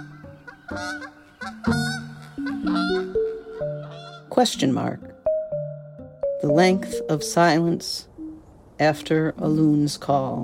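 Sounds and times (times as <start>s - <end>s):
wild goose honking at dusk: 0.0s - 4.9s
speech: 0.7s - 2.0s, 4.4s - 5.1s, 6.4s - 8.1s, 8.8s - 10.4s.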